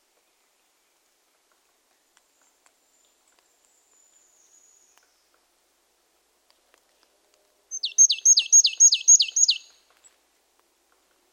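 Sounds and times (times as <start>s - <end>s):
Poecile palustris marsh tit calling: 7.7s - 9.8s.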